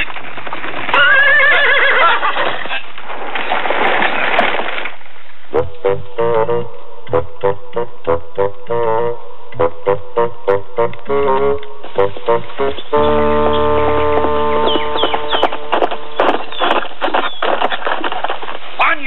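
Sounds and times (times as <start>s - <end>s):
horse hooves pounding in a gallop: 0.0s - 9.0s, 9.6s - 19.0s
horse long quavering whinny: 0.9s - 2.9s.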